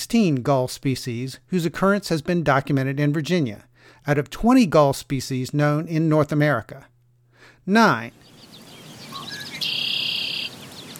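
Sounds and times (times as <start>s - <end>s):
speech: 0.0s - 6.9s, 7.7s - 8.3s
red-winged blackbird song with high introductory notes and buzzy trill: 7.9s - 10.9s.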